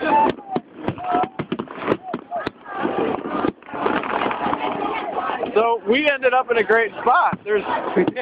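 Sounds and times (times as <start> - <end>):
professional New Year fireworks exploding: 0.0 - 5.4
speech: 5.6 - 8.2.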